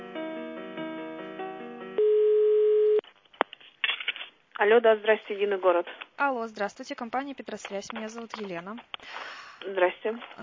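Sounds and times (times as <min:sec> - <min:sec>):
telephone ringback tone on an office line while a call is transferred: 0:02.0 - 0:03.0
speech: 0:04.6 - 0:10.4.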